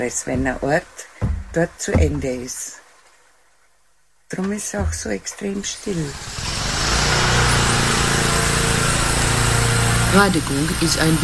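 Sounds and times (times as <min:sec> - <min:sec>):
speech: 0:00.0 - 0:02.8, 0:04.3 - 0:06.5, 0:10.1 - 0:11.2
lawn mower engine running: 0:06.1 - 0:11.2.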